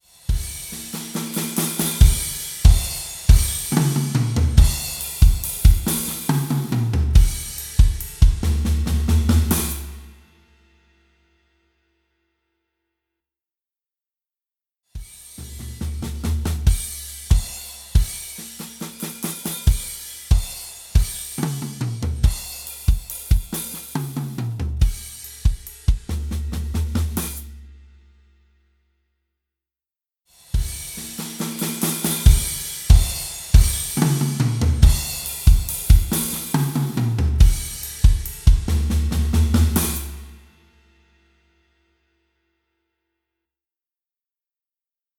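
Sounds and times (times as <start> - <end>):
drums in a bright room: 0.0 - 10.9, 15.0 - 28.4, 30.3 - 41.6.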